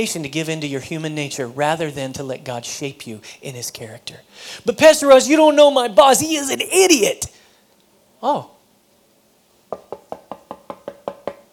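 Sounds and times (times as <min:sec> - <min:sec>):
speech: 0:00.0 - 0:07.4, 0:08.2 - 0:08.6
quick hollow knocks on a door: 0:09.7 - 0:11.5.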